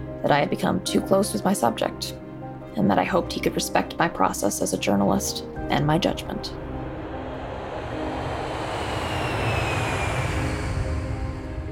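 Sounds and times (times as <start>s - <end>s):
speech: 0.2s - 2.2s, 2.8s - 6.6s
airplane engine roar taking off: 6.3s - 11.6s
faint whining tone: 6.7s - 11.6s.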